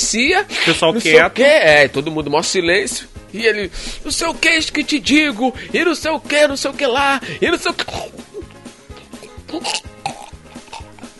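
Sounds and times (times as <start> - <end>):
speech: 0.1 - 8.3, 9.5 - 9.9
voice imitating a man choking on his dentures: 7.8 - 11.1.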